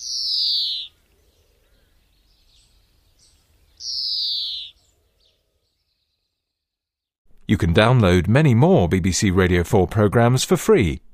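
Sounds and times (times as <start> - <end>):
faint chirps of birds at a winter roost: 0.0 - 7.0
speech: 7.5 - 11.1.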